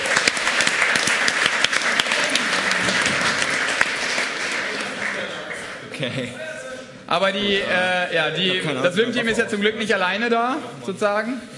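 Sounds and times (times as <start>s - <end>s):
audience applauding: 0.0s - 6.0s
speech: 6.0s - 6.5s, 7.1s - 11.5s.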